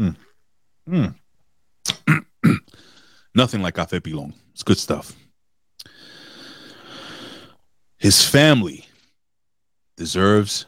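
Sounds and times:
speech: 0.9 - 1.2, 3.4 - 5.2, 8.0 - 8.9, 10.0 - 10.6
person clearing throat: 1.9 - 2.8.

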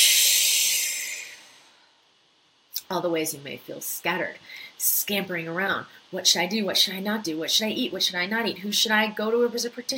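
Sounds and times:
slow deep breath during a guided relaxation exercise: 0.0 - 2.0
speech: 2.9 - 9.9.

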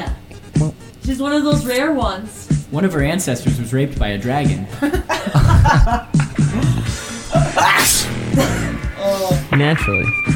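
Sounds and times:
speech: 1.1 - 7.0, 9.2 - 10.3
laughter: 4.7 - 8.8
short voiced intake of breath: 6.5 - 9.4
sneeze: 7.6 - 8.8.

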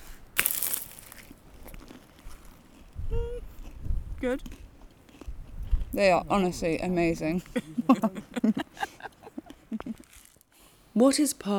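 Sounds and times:
crisp paper crinkling as a pasty is unwrapped: 0.4 - 1.3
speech: 4.2 - 4.6, 5.9 - 8.9, 11.0 - 11.5
laughter: 7.4 - 10.1.

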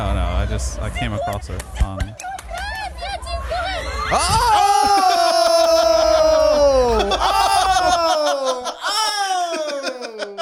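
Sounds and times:
speech: 0.0 - 2.3, 4.1 - 4.7
laughter: 1.8 - 10.3
loud piercing harsh scream: 3.4 - 10.2.

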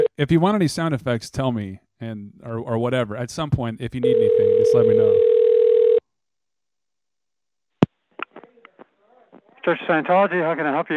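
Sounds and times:
speech: 0.2 - 5.3, 9.6 - 10.9
telephone dial tone while placing a call: 4.0 - 6.0.

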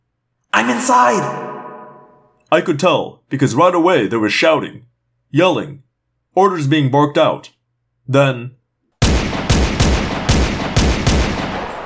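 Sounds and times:
speech: 0.8 - 1.5, 2.5 - 5.8, 6.4 - 8.6
gunfire of men shooting at a diving hawk: 9.0 - 11.8.

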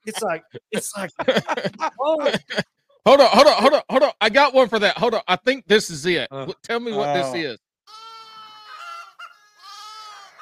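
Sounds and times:
speech: 0.0 - 7.6
laughter: 0.1 - 3.9, 7.0 - 7.5
lambs bleating: 7.9 - 9.0, 9.6 - 10.4.

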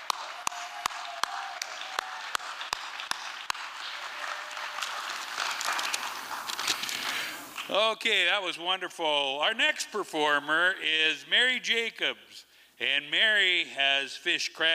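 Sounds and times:
crowd applauding: 0.0 - 7.7
speech: 7.7 - 14.7.

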